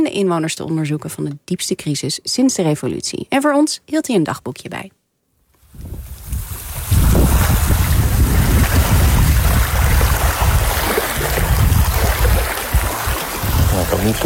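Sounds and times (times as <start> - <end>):
speech: 0.0 - 5.0, 13.9 - 14.2
gusty wind rumble: 5.6 - 14.2
sea water lapping at Guantanamo Bay in Cuba: 6.4 - 14.2.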